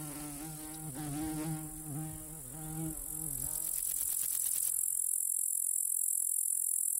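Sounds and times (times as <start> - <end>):
common meadow grasshopper Chorthippus parallelus stridulating in a meadow: 0.0 - 6.9
wavering insect buzz: 0.0 - 6.9.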